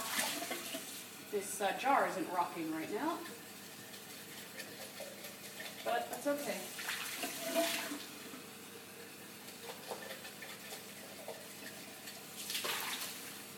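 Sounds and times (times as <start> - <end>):
hot water pouring and splashing: 0.0 - 1.1, 3.2 - 8.4, 9.4 - 13.5
speech: 1.3 - 3.4, 5.8 - 6.8, 7.6 - 8.0.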